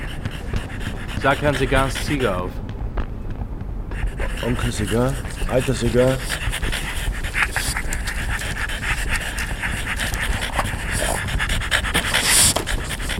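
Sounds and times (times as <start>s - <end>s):
dogs panting: 0.0s - 2.6s, 3.9s - 13.1s
speech: 1.2s - 2.6s, 4.4s - 6.5s.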